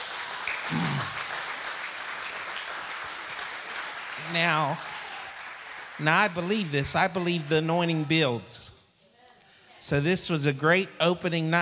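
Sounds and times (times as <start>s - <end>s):
crowd clapping in sustained dense applause: 0.0s - 8.3s
speech: 4.3s - 4.9s, 6.0s - 8.7s, 9.8s - 11.5s.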